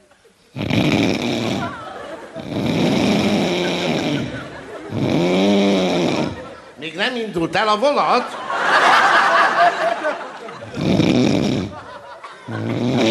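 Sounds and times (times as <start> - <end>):
person imitating snoring in a train compartment: 0.6 - 6.6, 10.6 - 11.9, 12.5 - 13.1
laughter: 1.4 - 2.6, 3.2 - 5.2, 6.2 - 13.1
speech: 7.0 - 8.8.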